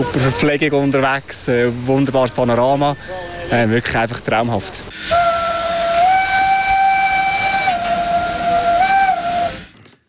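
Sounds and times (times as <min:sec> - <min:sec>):
speech: 0:00.1 - 0:05.3
steam locomotive whistle on the Furka steam railway: 0:04.9 - 0:09.7.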